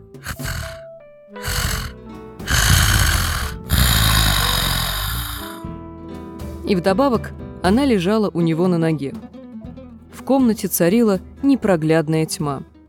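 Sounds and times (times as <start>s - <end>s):
woman snoring loudly: 0.0s - 0.8s, 1.4s - 5.7s
speech: 6.7s - 9.3s, 10.3s - 12.7s.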